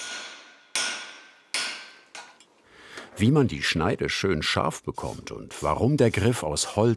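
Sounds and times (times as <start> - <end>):
hammer forging steel on an anvil: 0.0 - 2.3
speech: 3.2 - 6.9.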